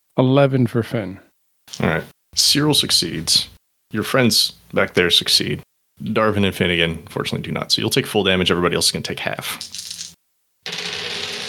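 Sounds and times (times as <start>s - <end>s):
speech: 0.2s - 1.2s, 1.8s - 9.8s
dice tumbling across a table: 9.6s - 11.4s.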